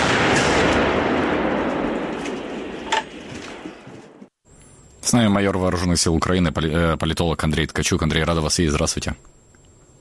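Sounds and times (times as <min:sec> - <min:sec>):
artillery fire with a Ukrainian unit at war: 0:00.0 - 0:04.3
sharp crack: 0:00.0 - 0:04.3
speech: 0:05.1 - 0:09.4.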